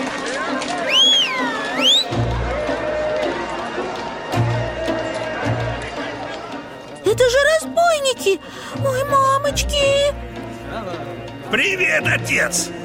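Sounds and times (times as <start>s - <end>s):
horse hooves galloping: 0.0s - 6.5s
busy background: 0.0s - 12.8s
speech: 8.3s - 10.2s, 10.8s - 12.8s.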